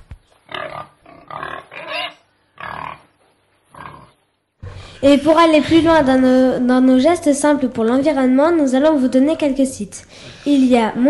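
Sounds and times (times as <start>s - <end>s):
pigs grunting and oinking: 0.5s - 4.2s
speech: 5.0s - 11.0s.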